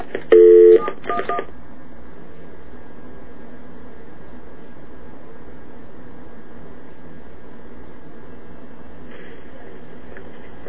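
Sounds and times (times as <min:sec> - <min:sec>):
telephone keypad DTMF tones: 0:00.3 - 0:01.5.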